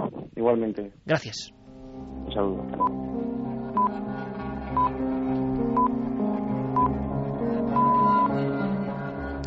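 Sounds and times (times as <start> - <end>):
speech: 0.4 - 3.1
music: 0.5 - 9.4
radio time signal electronic pips ending in a longer tone: 6.8 - 7.0, 7.8 - 8.3.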